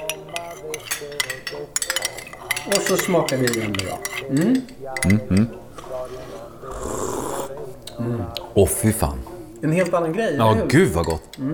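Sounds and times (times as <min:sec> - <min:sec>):
utensil clinking and scraping a dish while stirring salt and olive oil into celery: 0:00.0 - 0:06.5, 0:09.6 - 0:11.5
speech: 0:02.6 - 0:05.6, 0:08.0 - 0:11.5.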